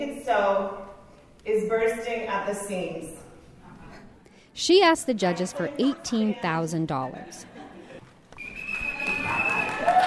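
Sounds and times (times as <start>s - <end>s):
speech: 0.0s - 3.2s, 4.6s - 7.6s
noise: 0.0s - 10.0s
whistle blown by someone riding a scooter: 8.4s - 9.8s.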